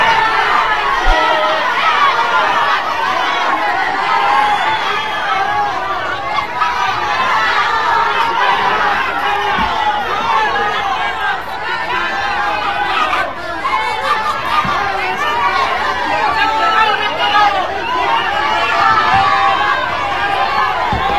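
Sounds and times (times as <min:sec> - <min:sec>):
crowd shouting at politicians: 0:00.0 - 0:21.1.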